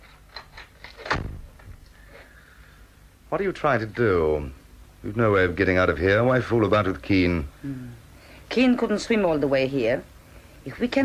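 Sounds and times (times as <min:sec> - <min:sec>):
door swinging shut with a solid thud: 0:01.0 - 0:01.8
speech: 0:03.3 - 0:11.0.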